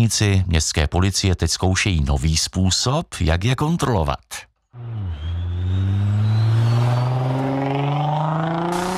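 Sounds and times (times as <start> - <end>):
speech: 0.0 - 4.8
car engine revving hard while accelerating past: 4.8 - 8.9.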